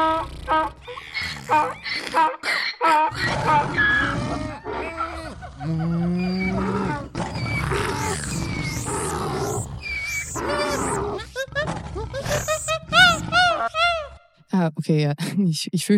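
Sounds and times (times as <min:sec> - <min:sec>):
speech: 0:01.5 - 0:03.0, 0:14.8 - 0:15.9
people mimicking roaring and growling wild animals: 0:03.2 - 0:14.1
laughter: 0:04.3 - 0:06.8, 0:10.4 - 0:14.1.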